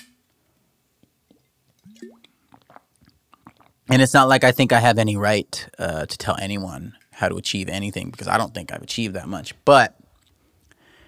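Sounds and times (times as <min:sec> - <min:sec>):
soft wet gulps and swallows: 0:01.0 - 0:03.9
person drinking water: 0:01.2 - 0:03.9
speech: 0:03.9 - 0:10.0.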